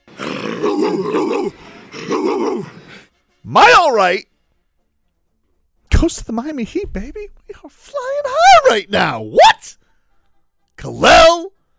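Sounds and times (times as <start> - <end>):
speech: 0.4 - 1.7, 3.5 - 4.3, 6.0 - 9.8, 10.8 - 11.5
man imitating a dog with gravelly barking growls on a TV broadcast: 0.4 - 2.9.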